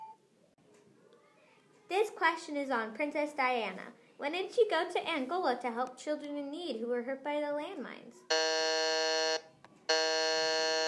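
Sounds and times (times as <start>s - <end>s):
speech: 1.9s - 8.6s
loud harsh quiz buzzer: 8.3s - 10.8s.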